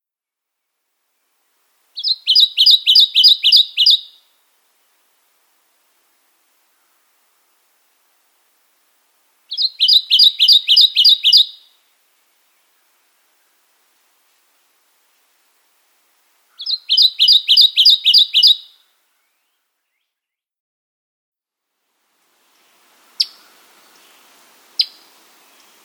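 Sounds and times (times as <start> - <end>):
Kentucky warbler singing: 2.0 - 4.3, 9.5 - 11.8, 16.5 - 20.4, 23.2 - 25.8.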